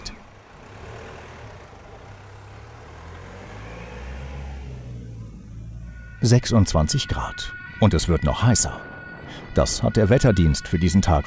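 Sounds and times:
ambulance engine low road rumble driving to an emergency call: 0.0 - 11.2
speech: 6.2 - 11.2.

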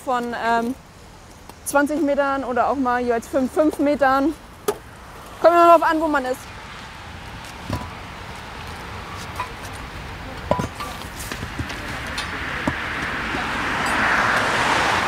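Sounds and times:
speech: 0.0 - 0.9, 1.7 - 4.4, 5.4 - 6.5
road sweeper truck rumbling and brushing while collecting debris: 7.5 - 15.0
clacks and knocks of debris being picked up: 10.4 - 13.1.

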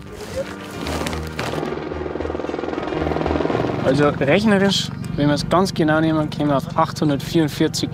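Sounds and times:
helicopter flying with rotor chop: 0.8 - 7.9
speech: 3.8 - 7.9.

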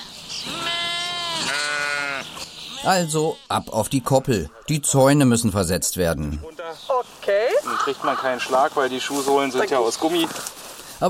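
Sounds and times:
farm flock of sheep bleating: 0.4 - 4.6
speech: 2.8 - 7.1, 7.8 - 11.0.

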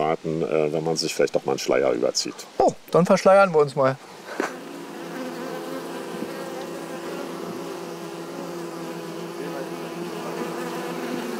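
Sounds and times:
speech: 0.1 - 4.6
honeybees buzzing around a hive: 4.1 - 11.3.

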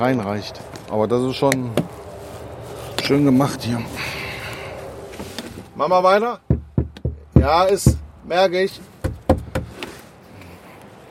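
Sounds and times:
speech: 0.0 - 2.0, 3.0 - 4.2, 5.8 - 6.5, 7.4 - 8.9
knocking on a wall: 6.5 - 8.1, 9.0 - 9.8.

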